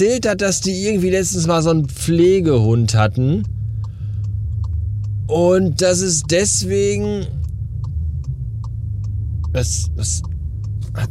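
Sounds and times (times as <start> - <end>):
speech: 0.0 - 3.6, 5.3 - 7.4, 9.5 - 10.3
steady low motor drone: 0.0 - 11.0
faint regular clicks: 2.6 - 5.3, 6.2 - 11.0.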